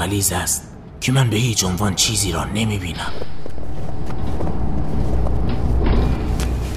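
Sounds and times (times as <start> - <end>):
speech: 0.0 - 3.4
bus road noise: 0.7 - 6.7
bus engine drone: 2.9 - 6.7.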